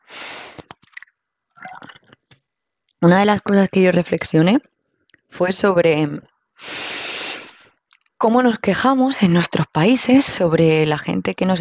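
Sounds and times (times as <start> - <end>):
sipping water in slurping bursts: 0.1 - 2.4
small swallows: 0.6 - 2.2
speech: 3.0 - 4.7, 5.3 - 6.7, 8.2 - 11.5.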